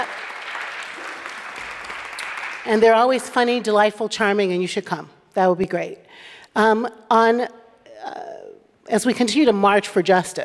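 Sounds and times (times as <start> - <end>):
audience applause: 0.0 - 2.7
speech: 2.6 - 8.3, 8.9 - 10.4.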